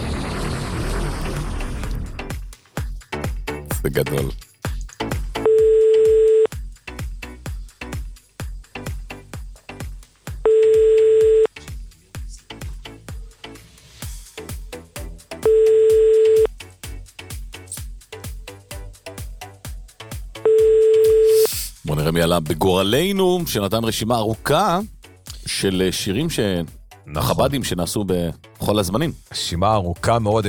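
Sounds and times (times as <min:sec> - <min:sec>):
loud rhythmic music with a pounding beat: 0:01.3 - 0:30.4
speech: 0:03.8 - 0:04.5, 0:22.4 - 0:30.4
telephone tone while dialing: 0:05.4 - 0:06.5, 0:10.5 - 0:11.5, 0:15.4 - 0:16.5, 0:20.4 - 0:21.5.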